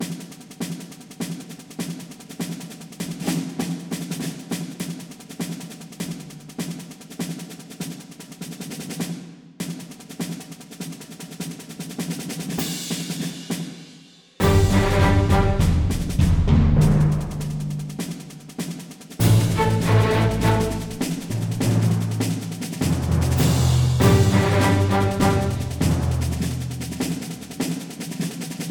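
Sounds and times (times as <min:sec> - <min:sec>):
percussion: 0:00.0 - 0:28.7
brass instruments: 0:14.4 - 0:18.0, 0:19.2 - 0:27.4.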